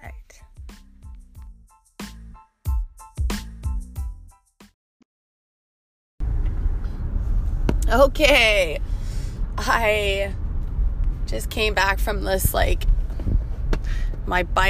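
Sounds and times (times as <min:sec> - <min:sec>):
car interior rumble: 0:06.2 - 0:14.6
speech: 0:07.9 - 0:08.9, 0:09.6 - 0:10.4, 0:11.3 - 0:12.9, 0:14.3 - 0:14.6
clicks and thumps inside a car: 0:12.3 - 0:14.4.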